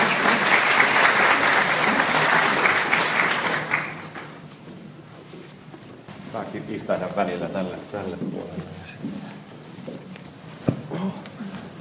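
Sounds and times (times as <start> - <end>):
audience applauding a newly welcomed group of guests: 0.0 - 4.4
speech: 6.5 - 9.4.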